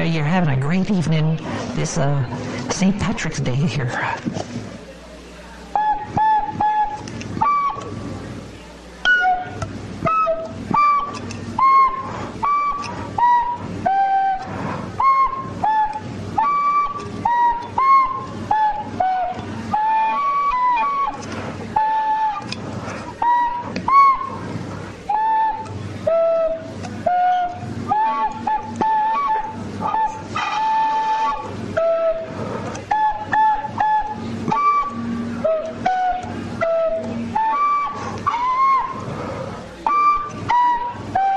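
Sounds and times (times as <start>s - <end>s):
steady rhythmic pulse: 0.0s - 41.3s
speech: 0.1s - 4.6s
tin whistle playing a lively tune: 5.7s - 7.9s, 9.0s - 21.2s, 21.8s - 24.4s, 25.1s - 32.3s, 32.9s - 39.0s, 39.8s - 41.3s.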